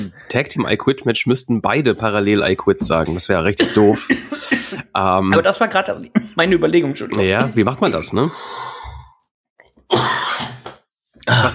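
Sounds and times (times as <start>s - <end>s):
speech: 0.0s - 8.7s, 11.3s - 11.5s
person coughing: 3.6s - 5.5s, 7.2s - 8.3s, 9.9s - 11.5s.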